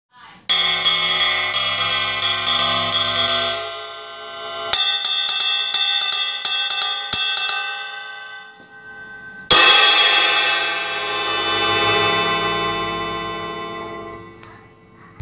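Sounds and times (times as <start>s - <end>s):
Paiste Rude crash ride cymbal: 0.5s - 15.1s.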